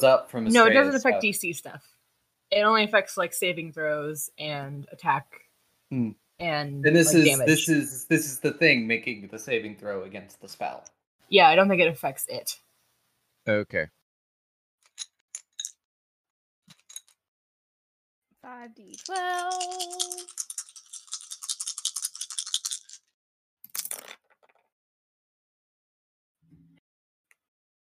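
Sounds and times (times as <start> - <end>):
speech: 0.0 - 12.6, 13.5 - 14.0, 18.5 - 20.4
dice shaken in a cup: 15.0 - 15.7, 18.9 - 23.1, 23.7 - 24.7.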